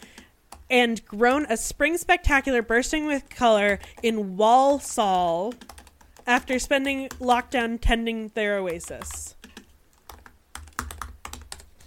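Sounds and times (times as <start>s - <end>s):
speech: 0.7s - 9.4s
typing on a computer keyboard: 3.5s - 4.1s, 5.4s - 7.5s, 8.7s - 11.8s.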